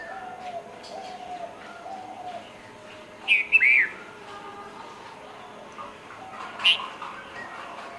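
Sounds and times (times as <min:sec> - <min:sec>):
red-vented bulbul song of bubbly slurred notes: 0:05.5 - 0:07.9.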